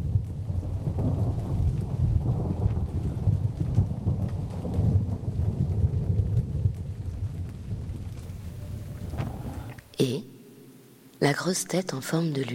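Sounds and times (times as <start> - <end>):
deep rumbling thunder: 0.0 - 10.0
heavy storm approaching on the port side: 0.0 - 11.3
constant rain hiss: 0.0 - 11.7
speech: 10.0 - 10.3, 11.2 - 12.5.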